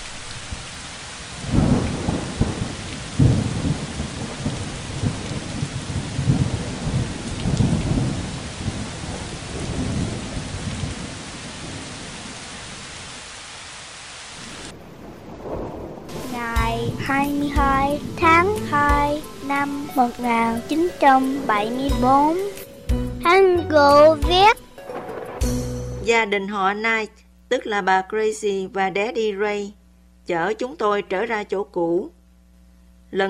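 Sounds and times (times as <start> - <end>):
heavy rain on a roof: 0.0 - 22.2
speech: 19.5 - 22.6, 23.4 - 24.6, 26.1 - 32.2.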